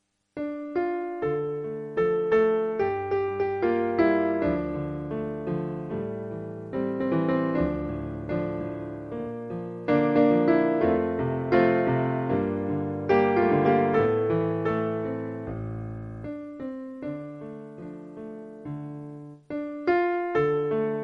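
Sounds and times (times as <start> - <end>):
piano: 0.0 - 21.0.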